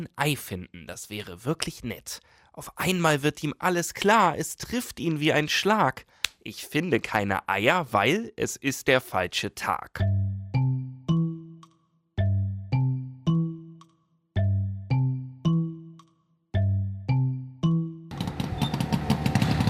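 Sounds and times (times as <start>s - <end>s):
speech: 0.0s - 10.2s
loud decaying three-note chimes: 10.0s - 18.1s
rough buzzing engine of an Easter-themed car in Ladbergen: 18.1s - 19.6s.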